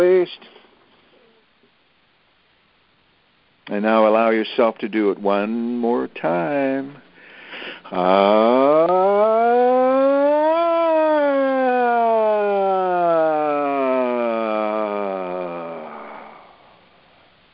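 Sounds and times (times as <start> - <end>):
speech: 0.0 - 0.6, 3.7 - 7.0, 7.6 - 9.7
voice imitating a siren as a vocal exercise: 7.9 - 16.5.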